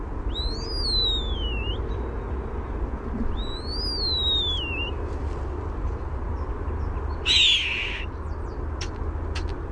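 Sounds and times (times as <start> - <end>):
low background rumble: 0.0 - 9.7
male European starling whistling at a nest cavity: 0.3 - 1.8, 3.3 - 5.0, 7.2 - 8.1.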